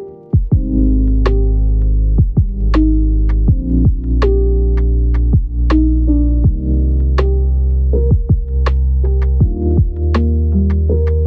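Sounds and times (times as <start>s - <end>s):
lofi hip hop beats: 0.4s - 7.5s, 8.1s - 11.2s.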